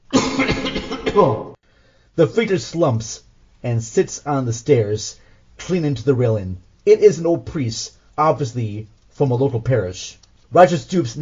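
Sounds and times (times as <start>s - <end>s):
low wheezing cough from a weak voice: 0.1s - 1.5s
speech: 1.2s - 1.5s, 2.2s - 11.2s.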